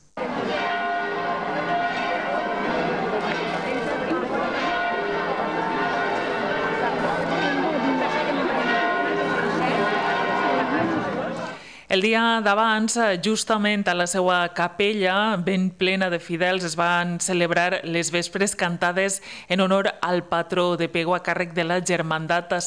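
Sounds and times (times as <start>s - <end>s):
church bells pealing for a procession in Pego: 0.2s - 11.6s
faint murmur of crowd chatter: 0.2s - 11.6s
speech: 11.9s - 22.6s.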